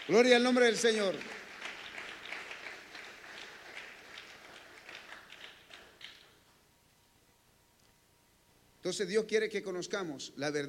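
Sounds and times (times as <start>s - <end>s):
audience applauding: 0.0s - 6.3s
speech: 0.1s - 1.4s, 8.9s - 10.6s.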